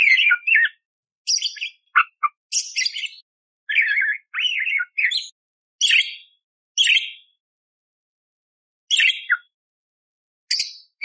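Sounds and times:
Eurasian tree sparrow fighting-style song with harsh chirps: 0.0 - 7.4, 8.9 - 9.6, 10.5 - 11.0.

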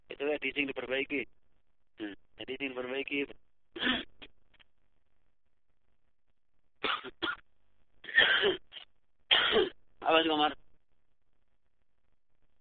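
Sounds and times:
speech: 0.2 - 1.4, 2.0 - 4.0, 8.4 - 8.6, 9.5 - 10.6
person coughing: 3.8 - 4.2, 6.8 - 7.4, 8.1 - 8.7, 9.3 - 9.8.

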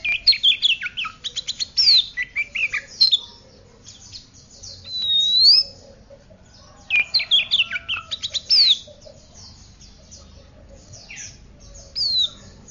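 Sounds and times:
Oriental magpie-robin singing descending whistled notes: 0.0 - 3.3, 4.0 - 5.8, 6.9 - 8.9, 11.0 - 12.6.

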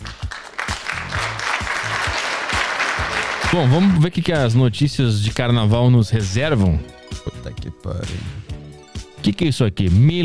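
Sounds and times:
applause sound effect: 0.0 - 4.2
speech: 3.5 - 8.4, 9.2 - 10.2.

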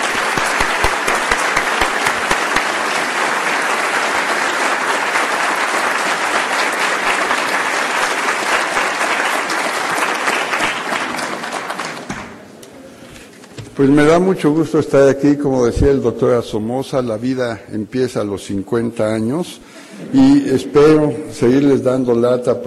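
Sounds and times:
audience applause at an academic anniversary ceremony: 0.0 - 12.3
speech: 13.8 - 22.6.

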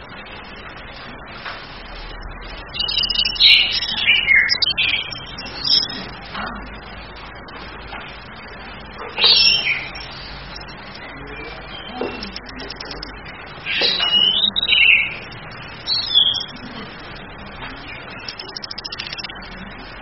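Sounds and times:
steady hiss: 0.0 - 19.9
female chestnut-capped thrush calling in chattering bursts: 2.6 - 6.3, 8.9 - 17.2, 17.8 - 19.4.

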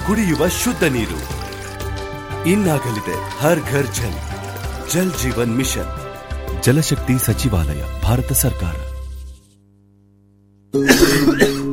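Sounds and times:
speech: 0.1 - 1.4, 2.4 - 4.3, 4.9 - 6.0, 6.6 - 8.9, 10.7 - 11.4
harsh coughing in a public health announcement about tuberculosis: 10.8 - 11.7.

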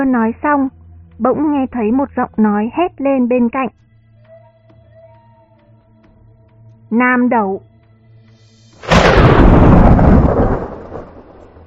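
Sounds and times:
speech: 0.0 - 3.9, 6.9 - 7.7
thunder from a lightning strike: 8.8 - 11.6.

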